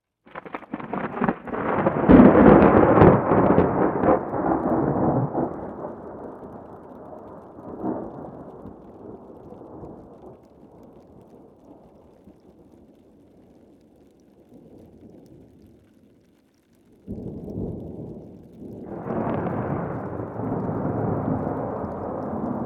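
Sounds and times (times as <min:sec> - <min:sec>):
thunderstorm on top of Chacaltaya mountain at 5300 m in Bolivia: 0:00.3 - 0:11.9, 0:17.1 - 0:22.6.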